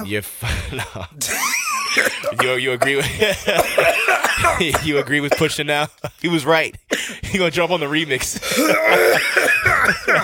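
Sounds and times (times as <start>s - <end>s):
speech: 0.0s - 10.2s
laughter: 0.4s - 6.5s, 8.2s - 10.2s
weak rough cough: 1.8s - 5.6s, 8.4s - 10.2s.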